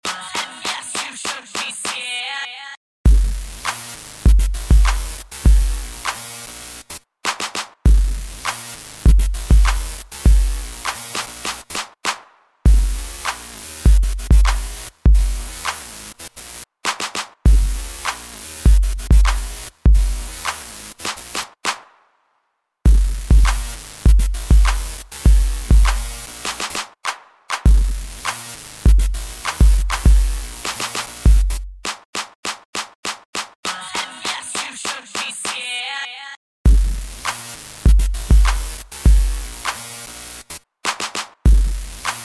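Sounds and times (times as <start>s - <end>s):
synthesized kick beats: 3.1s - 6.2s, 7.9s - 11.7s, 12.7s - 15.8s, 17.5s - 20.7s, 22.9s - 26.8s, 27.6s - 31.9s, 36.7s - 39.8s, 41.5s - 42.2s.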